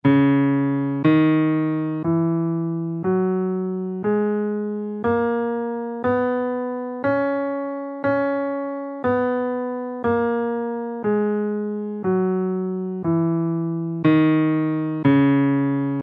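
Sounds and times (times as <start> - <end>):
guitar playing a dorian scale in C minor: 0.0 - 16.0.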